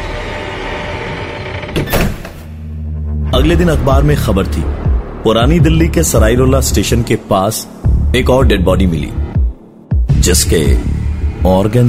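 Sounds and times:
door shutting with a solid thud and rattle: 0.0s - 2.6s
speech: 3.3s - 9.2s, 10.2s - 11.8s.

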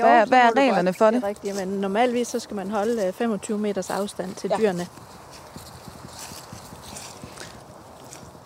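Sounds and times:
speech: 0.0s - 5.2s
horses moving with hooves clopping: 0.0s - 8.4s
steady outdoor hiss: 0.0s - 8.4s.

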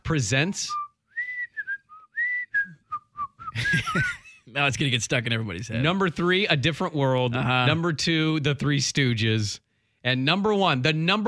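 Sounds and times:
speech: 0.1s - 0.8s, 3.6s - 11.2s
person whistling a TV show theme tune: 0.7s - 3.8s
laughter: 3.6s - 4.6s, 7.3s - 7.9s.

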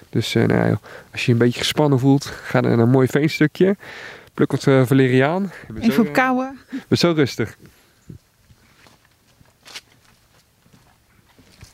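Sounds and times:
speech: 0.0s - 7.8s
footsteps on wooden boardwalk planks: 8.4s - 11.7s.

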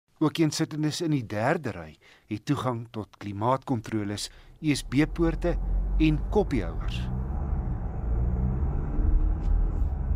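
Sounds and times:
speech: 0.2s - 7.2s
2.2-litre turbo diesel engine running in a vehicle: 4.7s - 10.1s.

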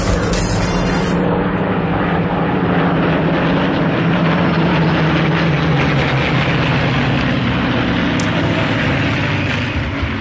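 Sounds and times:
WWII propeller aircraft engines droning overhead: 0.0s - 10.1s.

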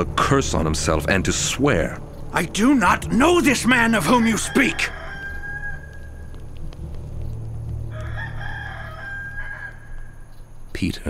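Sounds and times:
speech: 0.0s - 5.0s, 10.8s - 11.0s
rooster crowing: 3.9s - 6.4s, 7.8s - 10.3s.

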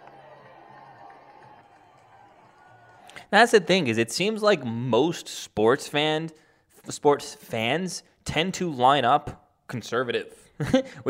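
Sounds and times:
large crowd cheering: 0.0s - 3.9s
speech: 3.3s - 11.0s.

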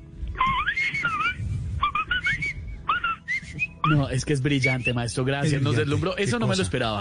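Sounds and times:
person whistling a quick warbling melody: 0.5s - 1.5s, 2.2s - 5.1s
speech: 3.9s - 6.9s.

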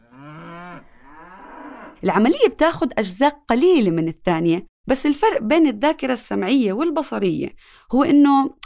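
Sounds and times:
cow mooing: 0.0s - 2.0s
speech: 2.0s - 8.6s.

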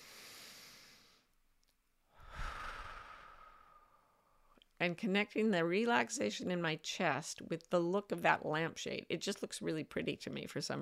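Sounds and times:
slow deep relaxation breathing: 0.0s - 1.3s, 2.1s - 4.6s
speech: 4.8s - 10.8s.

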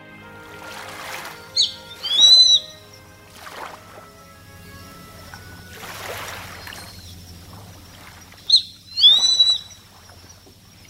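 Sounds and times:
low hum: 0.0s - 10.8s
grey-faced buzzard high whistled calls at island lighthouse: 1.2s - 7.5s, 8.4s - 10.0s.

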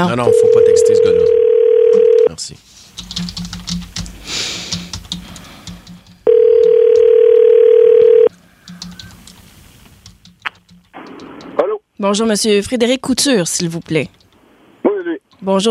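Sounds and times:
speech: 0.0s - 1.4s, 2.4s - 3.8s, 12.0s - 14.2s, 15.4s - 15.6s
steady telephone dial tone: 0.3s - 2.3s, 6.3s - 9.1s.

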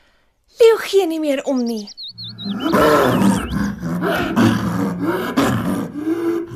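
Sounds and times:
speech: 0.9s - 5.5s
high bird-like chirps: 1.2s - 4.3s
leopard growling and roaring loudly: 2.4s - 6.5s.

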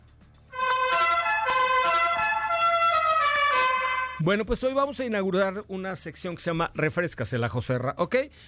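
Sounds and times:
pesero minibus horn honking to overtake: 0.5s - 4.2s
speech: 4.2s - 8.4s.

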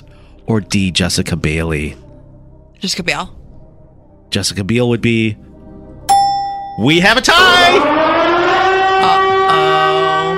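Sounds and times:
speech: 0.5s - 2.0s, 2.8s - 3.4s, 4.3s - 5.5s, 6.8s - 8.1s
civil defense siren wailing: 7.4s - 10.3s.

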